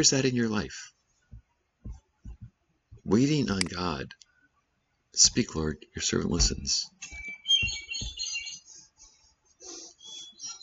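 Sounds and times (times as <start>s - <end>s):
speech: 0.0s - 1.0s, 3.1s - 4.2s, 5.2s - 7.8s
soft low thumps: 1.3s - 3.2s, 6.3s - 8.4s
bird clock playing a birdsong chime: 7.1s - 8.6s.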